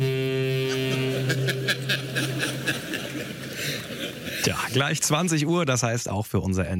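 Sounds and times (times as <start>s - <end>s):
deep foghorn blast signalling time is up: 0.0s - 4.4s
soft chuckling laughter: 0.7s - 4.7s
speech: 4.4s - 6.7s.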